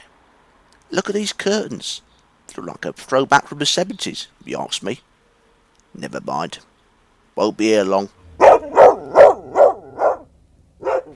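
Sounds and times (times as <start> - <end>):
speech: 0.9 - 5.1, 6.0 - 6.7, 7.4 - 8.2
dog barking: 8.3 - 11.1.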